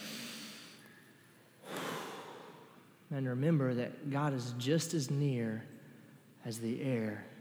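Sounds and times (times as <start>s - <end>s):
deep breath in and out: 0.0s - 3.0s
speech: 3.1s - 5.7s, 6.4s - 7.3s.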